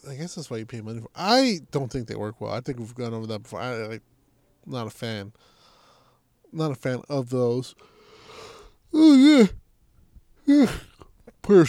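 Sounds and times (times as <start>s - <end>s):
speech: 0.0s - 5.5s, 6.5s - 7.9s, 8.9s - 9.6s, 10.5s - 11.6s
person yawning: 8.9s - 9.6s, 10.5s - 11.1s.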